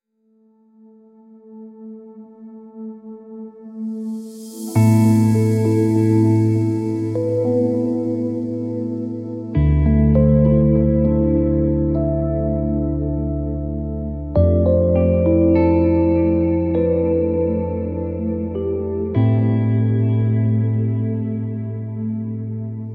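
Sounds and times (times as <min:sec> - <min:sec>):
dreamy electric mood music: 0:00.5 - 0:22.9.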